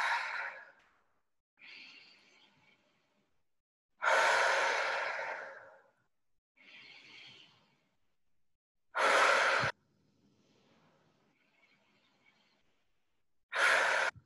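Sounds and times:
deliberate breathing in through the nose and out through the mouth: 0.0s - 8.2s, 8.9s - 14.2s.

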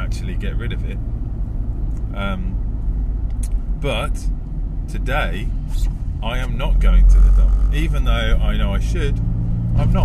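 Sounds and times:
car engine droning inside a car loaded with junk: 0.0s - 10.0s
speech: 0.2s - 1.4s, 2.1s - 2.6s, 3.4s - 10.0s.

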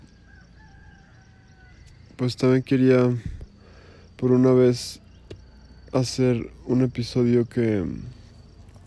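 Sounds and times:
faint rooster crows before dawn: 0.0s - 2.2s, 5.0s - 5.9s
steady low rumble of pre-dawn ambience: 0.0s - 8.8s
speech: 2.2s - 3.4s, 4.2s - 5.0s, 5.9s - 8.2s.

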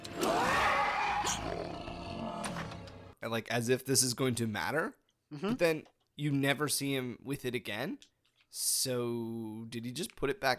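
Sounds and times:
person imitating a loud triumphant roar: 0.2s - 2.5s
speech: 1.2s - 10.5s.

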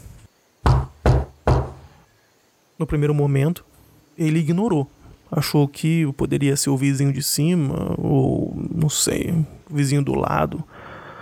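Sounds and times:
knocks on a wooden wardrobe: 0.6s - 1.9s
speech: 2.8s - 10.8s.

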